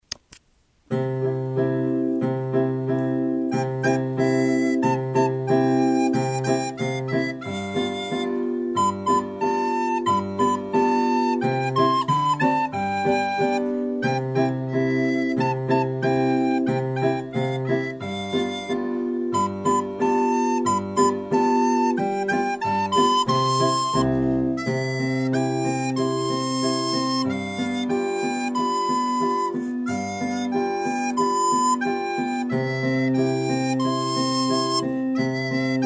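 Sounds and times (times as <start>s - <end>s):
polka melody on a recorder: 0.9s - 35.8s.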